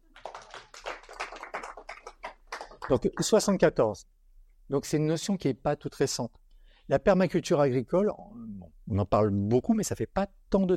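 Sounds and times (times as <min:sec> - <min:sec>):
audience applause: 0:00.0 - 0:03.6
speech: 0:02.9 - 0:10.7.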